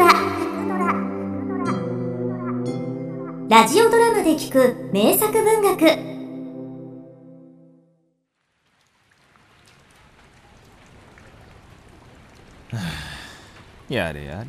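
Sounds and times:
sustained musical tone: 0:00.0 - 0:08.1
speech: 0:03.5 - 0:06.1, 0:13.9 - 0:14.4
steady rain: 0:08.3 - 0:14.4.

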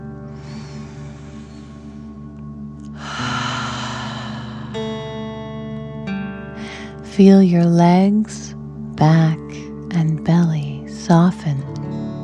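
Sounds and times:
deep breathing in and out during a guided breathing exercise: 0:00.0 - 0:05.8, 0:06.5 - 0:07.0
soft sustained music: 0:00.0 - 0:12.2
speech: 0:07.2 - 0:11.8.

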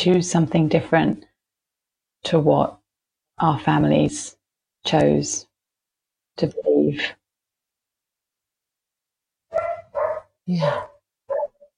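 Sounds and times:
speech: 0:00.0 - 0:01.3, 0:02.2 - 0:02.8, 0:03.4 - 0:05.5, 0:06.4 - 0:07.2, 0:10.5 - 0:10.9
dog barking: 0:09.5 - 0:11.7.

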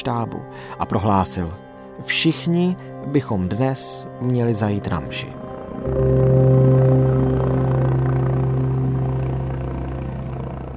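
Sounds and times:
speech: 0:00.0 - 0:06.3
helicopter engine and rotor drone while flying and landing: 0:05.5 - 0:10.7.

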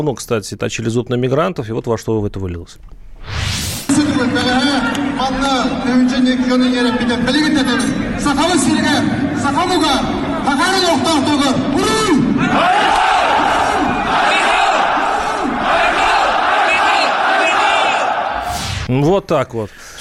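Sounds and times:
speech: 0:00.0 - 0:13.1, 0:18.9 - 0:19.9
large protesting crowd shouting and chanting in Irkutsk: 0:03.9 - 0:09.5, 0:10.1 - 0:18.5.

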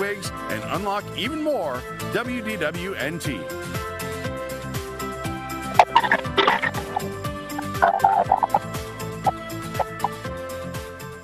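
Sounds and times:
speech: 0:00.0 - 0:04.0
chicken clucking: 0:05.8 - 0:08.7
busy tonal ambient background: 0:05.8 - 0:10.3.

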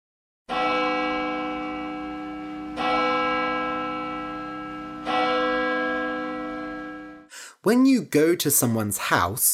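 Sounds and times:
large bell ringing: 0:00.5 - 0:07.3
speech: 0:07.6 - 0:09.5.

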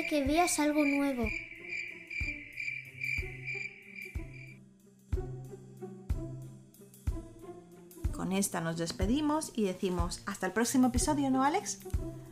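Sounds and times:
speech: 0:00.0 - 0:01.5, 0:08.2 - 0:12.3
crickets chirping in a meadow at night: 0:00.0 - 0:04.6.

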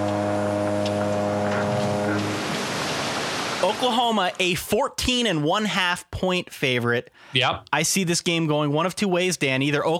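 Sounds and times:
racing motorboat engine roaring: 0:00.0 - 0:03.8
rushing wash of water: 0:00.0 - 0:04.8
speech: 0:03.7 - 0:09.9.

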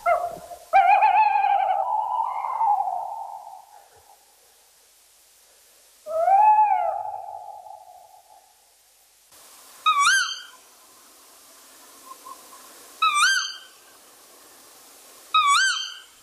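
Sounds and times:
male tawny owl hooting at night in Thetford Forest: 0:00.0 - 0:04.0, 0:06.0 - 0:08.4, 0:09.8 - 0:10.6, 0:12.0 - 0:13.9, 0:15.3 - 0:16.2.

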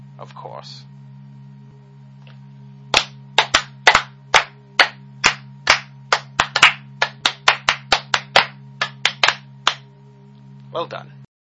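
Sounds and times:
speech: 0:00.2 - 0:01.0, 0:10.8 - 0:11.2
sharp hand claps: 0:02.9 - 0:09.9.

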